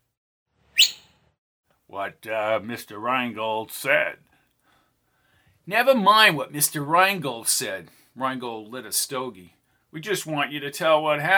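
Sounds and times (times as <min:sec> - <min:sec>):
man whistling sharply to call his horse: 0:00.8 - 0:01.1
speech: 0:01.9 - 0:04.3, 0:05.6 - 0:11.3.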